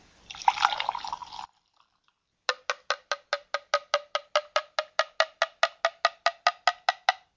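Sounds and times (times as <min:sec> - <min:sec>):
water pouring: 0:00.2 - 0:02.2
plastic bottle neck tapping on a mug: 0:02.5 - 0:07.3.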